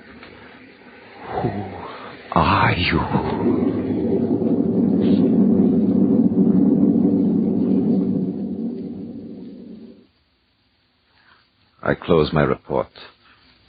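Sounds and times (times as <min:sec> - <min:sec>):
deep heavy thunder rumbling during a storm: 0:01.0 - 0:10.1
speech: 0:01.4 - 0:04.2, 0:11.9 - 0:13.2.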